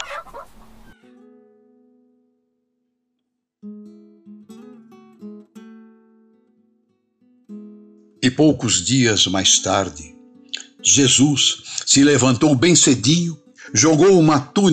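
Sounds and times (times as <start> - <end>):
chicken clucking: 0.0 - 1.0
speech: 8.2 - 10.2, 10.9 - 14.7.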